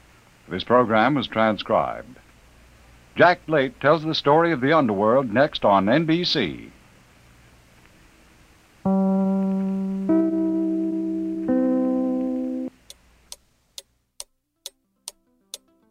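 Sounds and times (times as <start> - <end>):
speech: 0.5 - 2.2, 3.2 - 6.8
organ-like chords: 8.8 - 12.7
clock ticking: 12.9 - 15.8.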